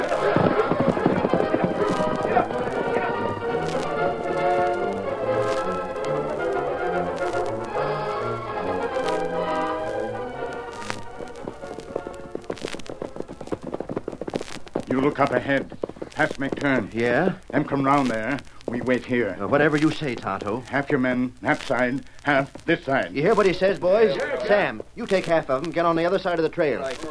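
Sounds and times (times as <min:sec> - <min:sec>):
horses under riders setting off, hooves clip-clopping: 0:00.0 - 0:27.0
speech: 0:15.1 - 0:27.0.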